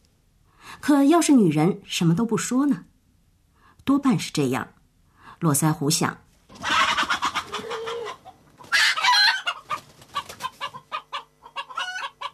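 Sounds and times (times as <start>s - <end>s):
speech: 0.8s - 2.9s, 3.9s - 4.8s, 5.4s - 6.7s
barred hen clucking and squawking: 6.5s - 12.3s.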